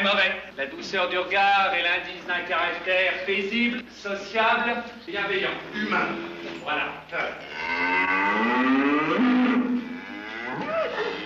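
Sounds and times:
speech: 0.3 - 9.3
cow mooing: 7.4 - 11.2.

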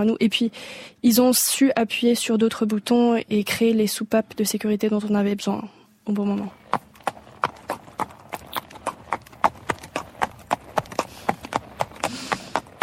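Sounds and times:
speech: 0.0 - 6.8
horse hooves clip-clopping on a hard surface: 6.4 - 12.8.

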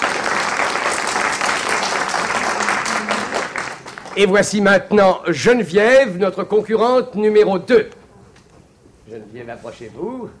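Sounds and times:
audience applause for a contestant: 0.0 - 4.6
faint murmur of voices: 2.3 - 3.6
speech: 4.2 - 8.0, 9.1 - 10.3.

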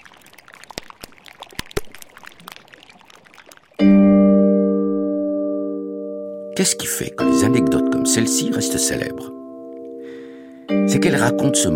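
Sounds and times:
whisky pouring over ice in a glass: 0.0 - 3.8
loud sustained ringing tone: 3.9 - 11.7
speech: 6.6 - 9.4, 10.9 - 11.7.

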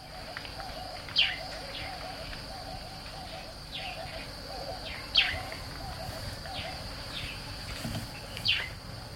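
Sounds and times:
low cooing murmur: 0.0 - 7.2
soft bird calls in the African bush at dawn: 0.0 - 8.8
steady high insect drone: 0.0 - 9.1.

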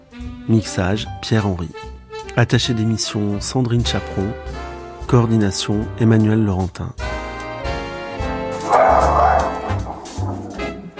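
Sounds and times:
speech: 0.5 - 7.0
dog barking and yipping: 8.6 - 10.9.

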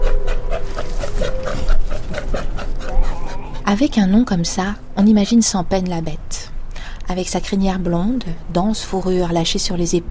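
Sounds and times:
Australian sea lion barking and grunting: 0.0 - 4.0
low rumbling background: 0.0 - 10.0
speech: 3.7 - 6.5, 7.1 - 10.0.

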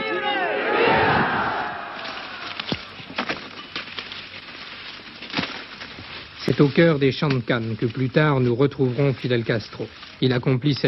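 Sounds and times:
large crowd roaring and shouting under a blazing sun: 0.0 - 3.0
busy crowd murmur: 0.0 - 4.8
speech: 6.6 - 10.8.

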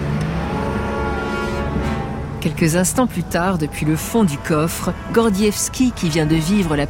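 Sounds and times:
car engine starting up and pulling away: 0.0 - 2.4
speech: 2.4 - 6.8.

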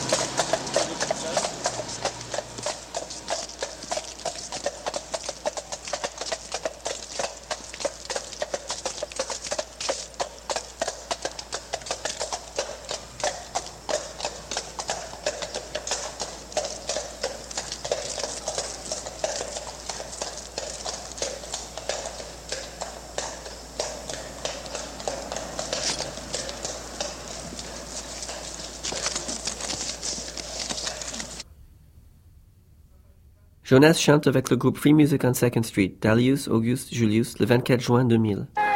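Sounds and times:
horse hooves clip-clopping on pavement: 0.0 - 31.4
faint low outdoor hum: 0.0 - 34.6
speech: 33.7 - 38.6.

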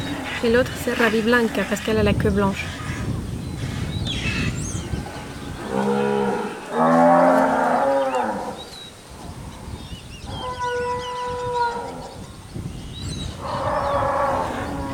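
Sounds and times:
cows mooing: 0.0 - 1.8, 4.4 - 8.7, 10.2 - 12.2, 13.3 - 14.9
speech: 0.4 - 2.8.

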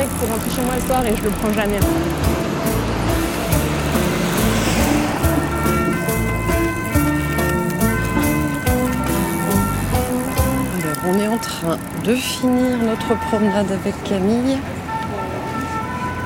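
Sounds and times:
steady city road traffic with engines droning: 0.0 - 16.2
speech: 0.2 - 2.4, 11.0 - 14.8.

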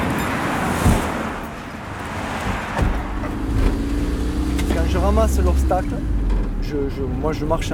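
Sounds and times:
vehicles whooshing past: 0.0 - 6.2
steady roar of highway traffic: 0.0 - 7.7
speech: 5.1 - 7.7.

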